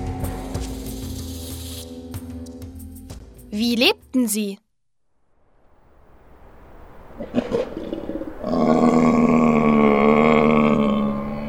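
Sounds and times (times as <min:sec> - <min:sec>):
speech: 0:03.5 - 0:04.6
bear roaring as it comes out of its cave: 0:07.2 - 0:11.4.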